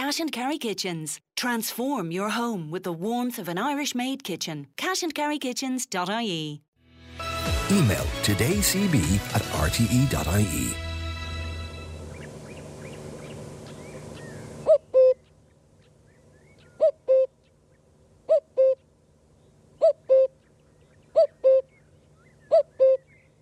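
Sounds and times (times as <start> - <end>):
speech: 0.1 - 10.9
common cuckoo calling its two-note call: 11.8 - 15.4, 16.1 - 17.6, 18.3 - 18.9, 19.8 - 23.3.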